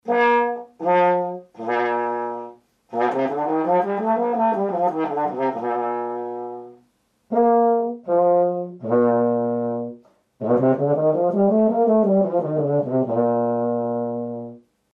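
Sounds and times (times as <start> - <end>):
euphonium with aluminium straight mute: 0.0 - 14.6.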